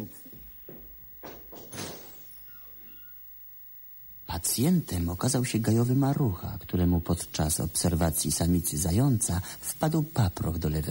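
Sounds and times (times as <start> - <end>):
doctor's office door thud: 0.7 - 2.2
speech: 4.4 - 10.8.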